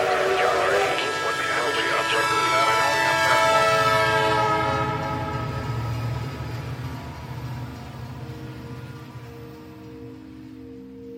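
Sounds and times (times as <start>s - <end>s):
subway train rumbling: 0.0s - 11.1s.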